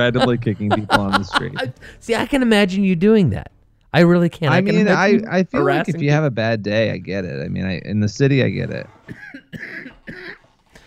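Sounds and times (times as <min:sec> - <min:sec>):
laughter: 0:00.0 - 0:01.9, 0:04.5 - 0:06.3
speech: 0:00.0 - 0:10.4
harsh raspy chesty coughs: 0:08.9 - 0:10.8.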